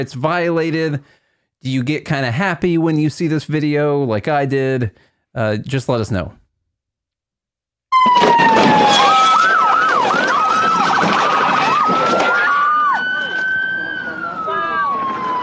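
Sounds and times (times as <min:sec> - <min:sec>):
speech: 0:00.0 - 0:06.4
police car siren wailing and yelping: 0:07.9 - 0:15.4
busy street noise: 0:08.0 - 0:15.4.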